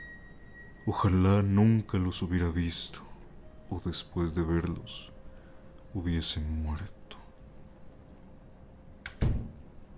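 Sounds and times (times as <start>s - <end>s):
speech: 0.8s - 3.1s, 3.7s - 5.1s, 5.9s - 7.0s
door slamming shut with heavy booming thud: 9.2s - 9.6s.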